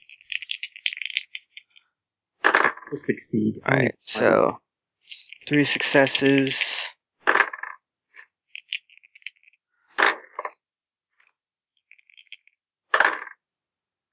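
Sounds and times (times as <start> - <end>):
dice clattering onto a hard table during a tabletop game: 0.0 - 1.6, 2.4 - 2.9, 7.2 - 10.6, 11.9 - 13.4
speech: 2.9 - 4.6, 5.5 - 6.8.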